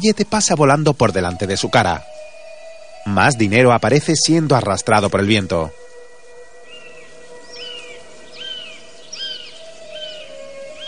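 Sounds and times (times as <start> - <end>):
speech: 0.0 - 2.2, 3.0 - 5.8
bird of prey screaming in the sky: 6.7 - 10.8.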